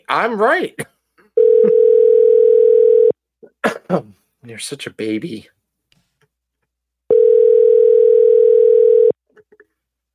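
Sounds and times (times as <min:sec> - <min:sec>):
speech: 0:00.1 - 0:00.9, 0:03.9 - 0:05.6
telephone dial tone of outgoing call: 0:01.4 - 0:03.1, 0:07.1 - 0:09.2.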